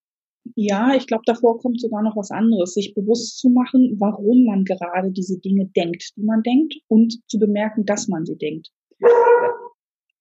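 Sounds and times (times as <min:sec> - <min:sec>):
speech: 0:00.5 - 0:09.6
dog barking with a whining tonal quality: 0:09.0 - 0:09.8.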